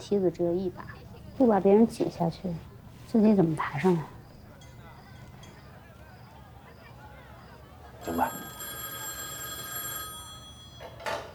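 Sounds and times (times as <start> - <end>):
speech: 0.0 - 4.2
telephone bell ringing: 8.0 - 11.3.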